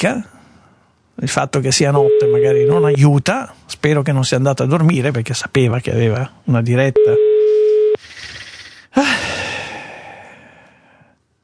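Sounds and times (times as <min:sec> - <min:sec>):
speech: 0:00.0 - 0:00.3, 0:01.2 - 0:07.3, 0:09.0 - 0:09.4
telephone ringing tone from an outgoing call: 0:02.0 - 0:03.0, 0:07.0 - 0:08.0.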